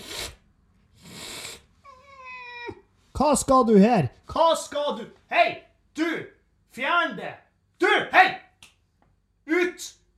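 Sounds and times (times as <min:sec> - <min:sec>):
small kitten hissing: 0:00.0 - 0:02.8
small kitten meowing: 0:01.9 - 0:02.8
speech: 0:03.2 - 0:08.4, 0:09.5 - 0:10.0.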